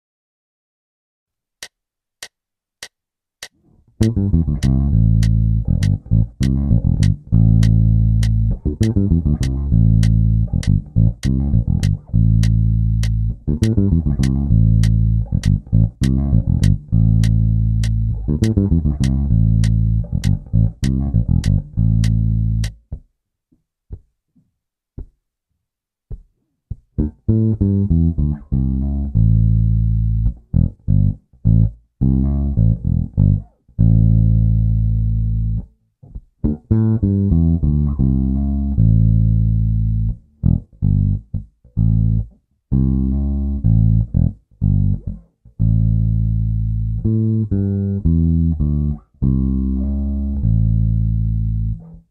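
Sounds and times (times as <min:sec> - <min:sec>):
straight blues bassline in A: 0:03.7 - 0:23.0, 0:26.1 - 0:52.0.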